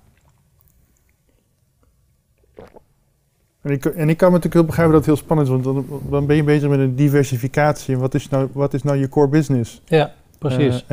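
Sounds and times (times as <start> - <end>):
person sipping water: 0.0 - 3.0
speech: 3.6 - 10.9.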